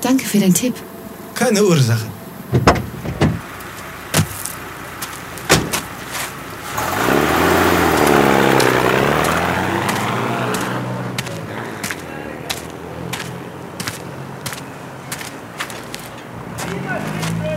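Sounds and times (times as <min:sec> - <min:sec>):
speech: 0:00.0 - 0:02.8
car engine rumbling as the vehicle slows and pulls up at an excavation camp: 0:00.0 - 0:17.5
clunks and knocks: 0:02.1 - 0:03.5, 0:04.1 - 0:04.5, 0:05.5 - 0:06.3.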